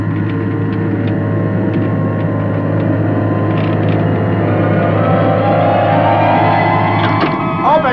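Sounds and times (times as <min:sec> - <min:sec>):
roof doors opening: 0:00.2 - 0:07.9.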